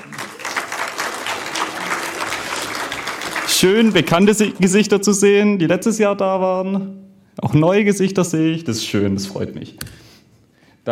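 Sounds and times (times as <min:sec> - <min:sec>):
applause from a sizable audience: 0:00.0 - 0:04.8
speech: 0:03.6 - 0:10.0.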